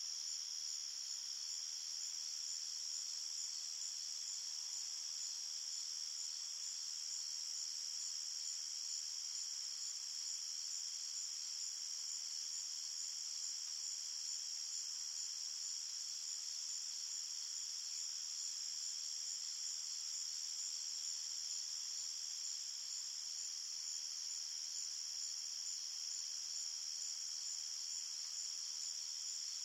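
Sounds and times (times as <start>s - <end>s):
cricket chorus at night in an open field: 0.0s - 29.6s.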